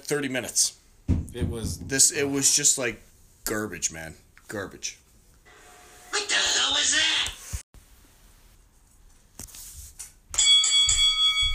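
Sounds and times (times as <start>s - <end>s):
speech: 0.1s - 5.0s, 6.7s - 7.1s
rustling noise: 7.4s - 10.2s
bell ringing with bright metallic tone: 10.4s - 11.5s.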